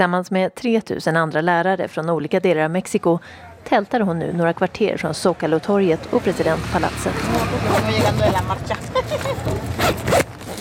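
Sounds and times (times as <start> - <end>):
speech: 0.0 - 10.0
outdoor noise: 0.0 - 10.5
tent zipper being unzipped by a woman: 7.2 - 8.4, 9.3 - 10.5
laughter: 7.7 - 9.8.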